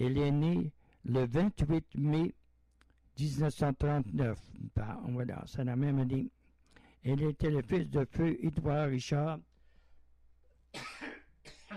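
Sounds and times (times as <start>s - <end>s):
speech: 0.0s - 2.4s, 3.2s - 6.4s, 7.0s - 9.5s, 10.7s - 11.0s
quiet humming background: 0.0s - 11.7s
person coughing: 10.8s - 11.7s.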